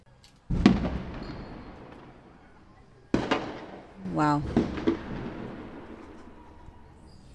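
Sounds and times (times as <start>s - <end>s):
explosive blasts during a military raid on a residential neighbourhood: 0.5s - 2.4s, 3.1s - 6.4s
speech: 4.2s - 4.8s.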